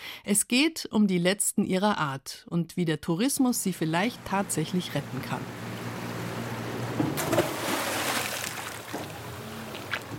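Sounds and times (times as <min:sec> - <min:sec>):
speech: 0:00.2 - 0:05.6
steady low engine hum: 0:04.0 - 0:10.1
gentle water lapping: 0:04.2 - 0:10.1
anchor splashing from an aluminium boat into shallow water: 0:06.8 - 0:10.1.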